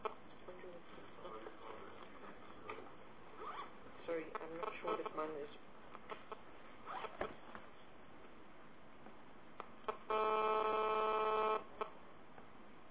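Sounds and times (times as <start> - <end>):
speech: 4.1 - 6.4
mobile phone buzzing: 9.8 - 11.9.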